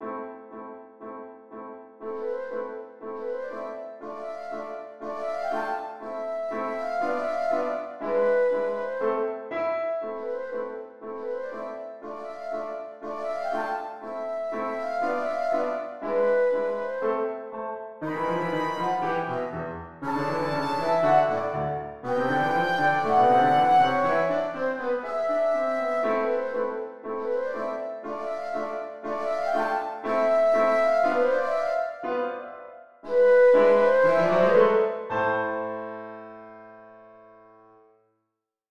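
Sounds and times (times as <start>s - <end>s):
flute melody: 2.0s - 36.6s.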